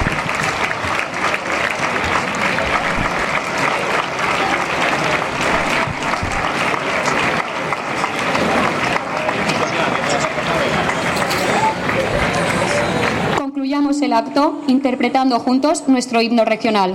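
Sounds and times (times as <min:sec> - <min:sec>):
crowd murmur: 0:00.0 - 0:13.4
loud applause from a large audience: 0:00.0 - 0:13.4
speech: 0:14.3 - 0:16.9.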